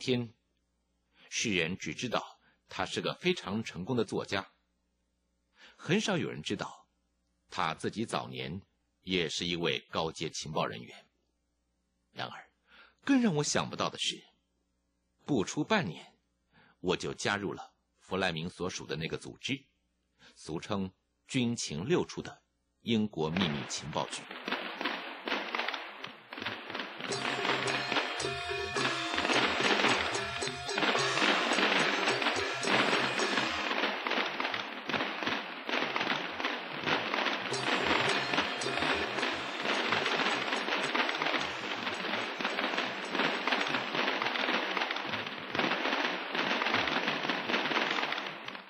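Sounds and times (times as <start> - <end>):
speech: 0.0 - 0.4, 1.3 - 4.6, 5.6 - 6.8, 7.5 - 11.0, 12.2 - 14.3, 15.2 - 16.1, 16.8 - 19.7, 20.3 - 24.6
strings of firecrackers crackling: 23.3 - 48.6.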